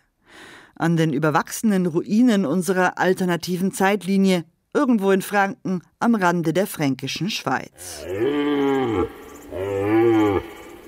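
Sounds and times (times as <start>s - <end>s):
speech: 0.8s - 9.2s
large bovine mooing: 7.8s - 10.8s.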